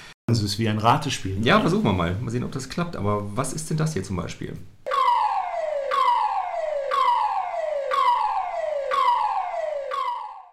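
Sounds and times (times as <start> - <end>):
speech: 0.3 - 4.8
airport fire station electronic alarm tone wailing: 4.9 - 10.5.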